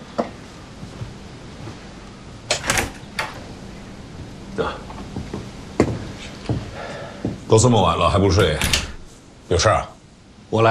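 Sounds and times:
door opening with clicks, clunks and rattles: 2.5 - 6.1, 8.4 - 9.2
speech: 7.5 - 8.9, 9.5 - 9.9.

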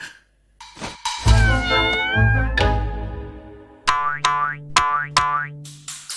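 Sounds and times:
cat meowing: 1.2 - 2.8
springy cartoon boing sounds: 3.9 - 5.5.

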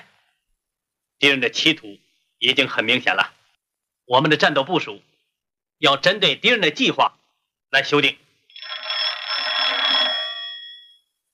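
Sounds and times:
speech: 1.2 - 3.4, 4.1 - 5.1, 5.8 - 8.8
old-fashioned telephone bell ringing: 8.5 - 11.2.

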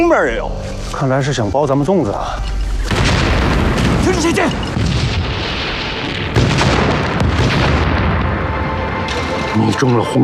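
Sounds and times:
speech: 0.1 - 3.3, 4.0 - 5.0, 9.6 - 10.2
rumbling debris-like noise: 2.4 - 9.6
explosion: 2.8 - 9.4.

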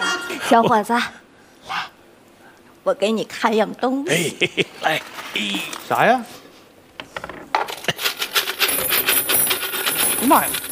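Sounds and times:
speech: 0.5 - 1.8, 2.8 - 6.4, 10.2 - 10.7
large bunch of keys jangling while handled and shaken: 8.0 - 10.7.

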